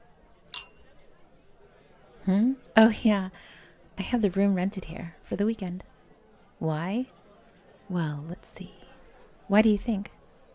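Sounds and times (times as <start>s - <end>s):
low murmur of noise: 0.0s - 10.5s
glasses clinking in a toast: 0.5s - 0.9s
speech: 2.3s - 5.9s, 6.6s - 7.2s, 7.9s - 8.8s, 9.5s - 10.2s.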